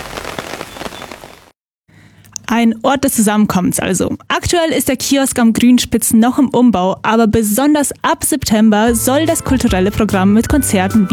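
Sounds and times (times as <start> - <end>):
rain falling outdoors: 0.0 - 1.5
speech: 2.5 - 11.1.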